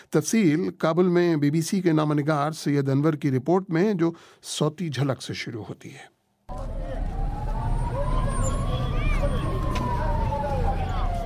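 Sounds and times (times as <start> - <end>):
speech: 0.1 - 6.7
agitated crowd voices after a mosque suicide bombing in Kabul: 6.5 - 11.2
ambulance siren wailing at a bombing scene in Kabul: 6.5 - 11.2
traffic rumble in Kabul: 6.5 - 11.2.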